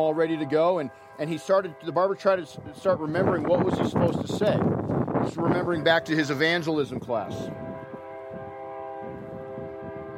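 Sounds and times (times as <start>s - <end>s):
speech: 0.0s - 7.7s
passing train horn drone: 0.0s - 10.1s.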